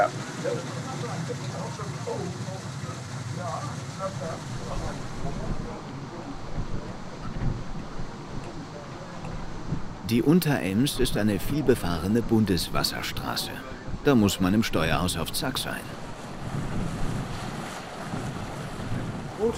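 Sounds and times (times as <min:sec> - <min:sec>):
speech: 0:00.0 - 0:02.8, 0:03.4 - 0:07.5, 0:10.1 - 0:16.0
wind blowing outside buffeting the microphone: 0:04.4 - 0:19.5.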